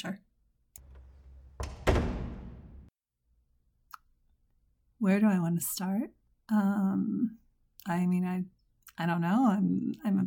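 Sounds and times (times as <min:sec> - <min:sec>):
speech: 0:00.0 - 0:00.3, 0:05.0 - 0:10.2
classroom door shut with heavy thuds: 0:00.8 - 0:02.9.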